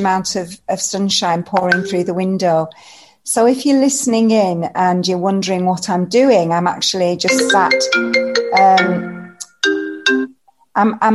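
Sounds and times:
speech: 0:00.0 - 0:10.2, 0:10.8 - 0:11.1
mobile phone ringtone in a living room: 0:01.7 - 0:02.2, 0:07.3 - 0:10.4.

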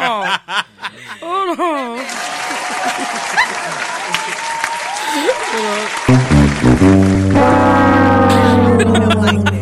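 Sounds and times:
laughter: 0:00.0 - 0:05.9, 0:08.2 - 0:09.6
crowd applause: 0:02.0 - 0:09.4
cheering voices: 0:02.0 - 0:09.6
hand clapping: 0:02.1 - 0:07.4
speech: 0:06.1 - 0:07.7
loud sustained horn blasts: 0:06.1 - 0:09.6.

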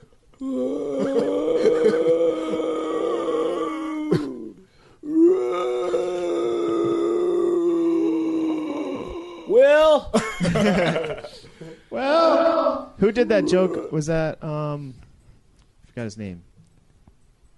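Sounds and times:
speech: 0:00.4 - 0:00.8, 0:13.2 - 0:15.0, 0:16.0 - 0:16.5
person imitating howler monkey calls with rough throaty howls: 0:00.4 - 0:10.1, 0:11.9 - 0:14.2
person breathing: 0:04.6 - 0:05.0, 0:11.3 - 0:12.0
laughter: 0:10.2 - 0:11.8.

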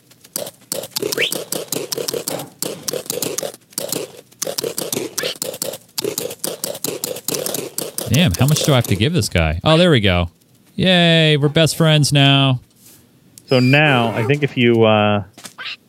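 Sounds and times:
computer mouse clicking: 0:00.2 - 0:09.2
speech: 0:08.1 - 0:12.7, 0:13.5 - 0:15.3.

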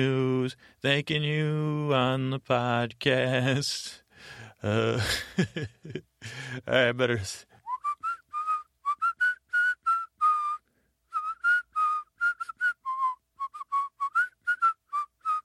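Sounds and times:
speech: 0:00.0 - 0:07.5
breathy whistled tune whistled on the inhale: 0:07.6 - 0:15.4.

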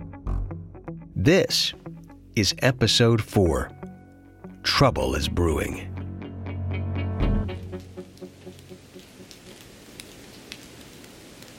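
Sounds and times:
speech: 0:01.2 - 0:01.8, 0:02.4 - 0:03.8, 0:04.6 - 0:05.9
steady cold rain hissing in Seattle: 0:07.4 - 0:11.5
water drips tapping: 0:07.6 - 0:11.5.

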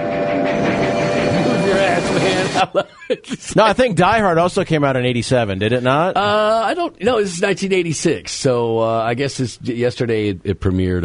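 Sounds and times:
indistinct voices: 0:00.0 - 0:02.7
train passing: 0:00.0 - 0:02.7
whining metallic tones of a passing train: 0:00.0 - 0:02.7
laughter: 0:01.7 - 0:03.7
speech: 0:02.6 - 0:11.0.

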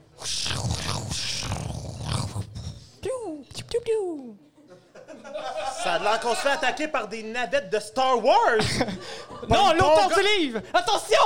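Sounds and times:
person imitating wind with breathy whoosh and whistling glides: 0:00.2 - 0:03.9
laughter: 0:04.5 - 0:06.9, 0:08.6 - 0:10.8
speech: 0:06.0 - 0:11.2.

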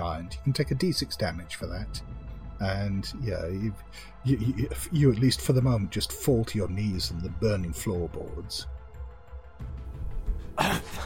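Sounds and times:
speech: 0:00.2 - 0:08.8, 0:10.6 - 0:11.0
person faking a fit of coughing: 0:10.6 - 0:11.0.

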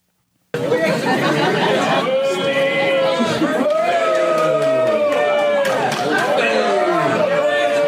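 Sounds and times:
laughter: 0:00.6 - 0:07.5
live audience booing at a comedy show: 0:00.6 - 0:07.8.

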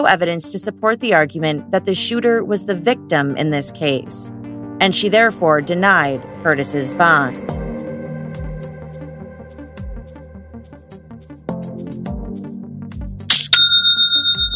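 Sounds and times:
speech: 0:00.0 - 0:07.6
online store sale notification chime: 0:13.3 - 0:14.5.

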